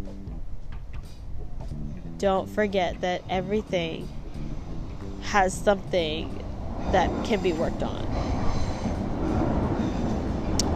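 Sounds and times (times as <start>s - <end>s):
speech: 2.2s - 4.2s, 5.2s - 8.3s
metro train rumbling past: 2.6s - 10.7s.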